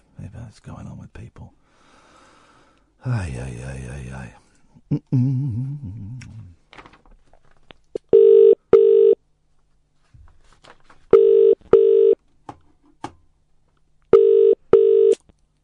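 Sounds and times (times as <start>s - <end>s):
speech: 0.5s - 1.6s, 3.0s - 6.4s
telephone line double-burst ringtone: 8.1s - 9.2s, 11.2s - 12.2s, 14.2s - 15.2s.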